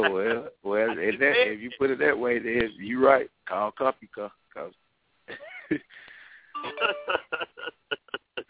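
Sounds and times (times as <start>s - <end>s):
laughter: 0.0s - 2.0s, 6.6s - 8.4s
voice murmuring: 0.0s - 2.0s
speech: 0.0s - 4.8s, 5.7s - 6.0s
phone text message notification chimes: 6.6s - 7.4s.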